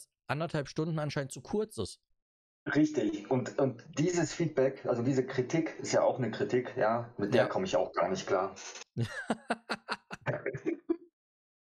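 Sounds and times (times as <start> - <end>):
speech: 0.3 - 10.7
person coughing raspily: 9.0 - 10.5
laughter: 9.0 - 11.0.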